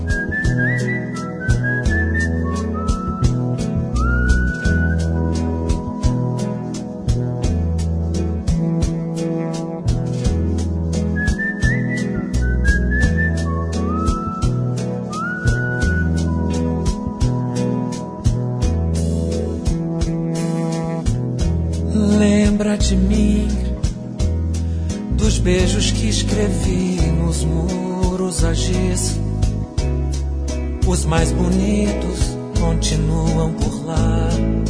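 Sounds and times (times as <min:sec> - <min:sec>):
melodic whistling carrying the tune of a song: 0:00.0 - 0:05.9, 0:11.1 - 0:17.5
acoustic guitar plucked notes: 0:00.0 - 0:34.6
speech: 0:31.0 - 0:34.0.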